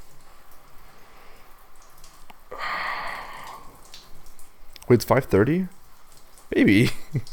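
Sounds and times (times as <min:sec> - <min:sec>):
running water while rinsing something: 0:00.0 - 0:07.3
speech: 0:04.9 - 0:05.8, 0:06.5 - 0:07.3.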